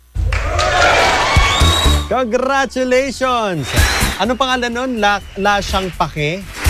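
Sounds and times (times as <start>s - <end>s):
large crowd applauding: 0.2s - 2.1s
crowd cheering and shouting: 0.2s - 6.1s
speech: 2.2s - 6.6s.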